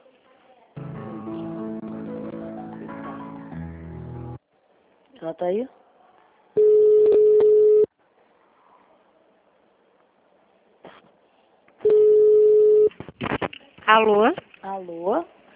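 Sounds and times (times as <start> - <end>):
speech: 5.2 - 5.8, 13.9 - 15.3
long low telephone beeps as a call is transferred to an office extension: 6.6 - 7.9, 11.8 - 12.9.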